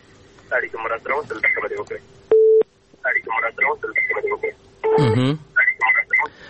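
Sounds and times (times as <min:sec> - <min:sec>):
narrowband phone-line talk: 0:00.5 - 0:02.0, 0:03.0 - 0:04.6, 0:05.6 - 0:06.3
telephone tone after a call-in connection drops: 0:04.8 - 0:06.3.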